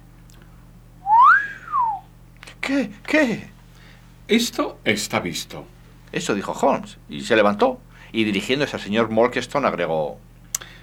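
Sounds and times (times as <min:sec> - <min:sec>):
man letting out a satisfied whistle: 0:01.0 - 0:02.1
speech: 0:02.7 - 0:03.5, 0:04.3 - 0:10.3.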